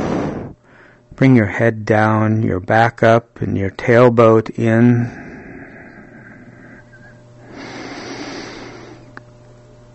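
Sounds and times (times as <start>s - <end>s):
slow deep breathing: 0.0s - 1.1s, 4.9s - 9.2s
steady low hum: 0.0s - 9.9s
speech: 1.2s - 5.2s.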